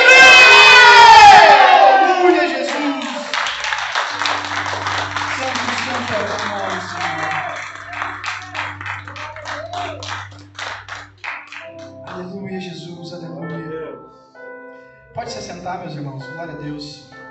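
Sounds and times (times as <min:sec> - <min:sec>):
large crowd shouting in unison: 0:00.0 - 0:03.3, 0:05.5 - 0:10.2
crowd excited cheering: 0:00.0 - 0:11.9.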